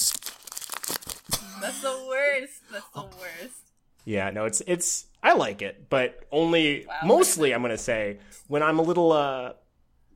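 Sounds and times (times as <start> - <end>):
paper being crumpled: 0.0 - 1.5
speech: 1.6 - 3.1, 4.0 - 9.6.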